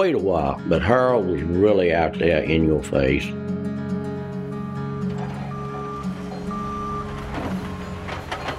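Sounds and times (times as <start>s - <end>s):
speech: 0.0s - 3.5s
backhoe backup alarm beeping: 4.5s - 8.5s
loud droning backhoe diesel engine rumble: 4.5s - 8.5s
clanking: 5.0s - 8.5s.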